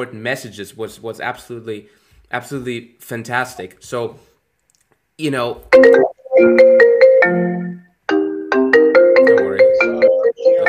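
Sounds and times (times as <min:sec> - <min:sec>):
speech: 0:00.0 - 0:04.3, 0:05.2 - 0:06.8
phone ringtone on an Apple device: 0:05.8 - 0:07.7, 0:08.5 - 0:10.6.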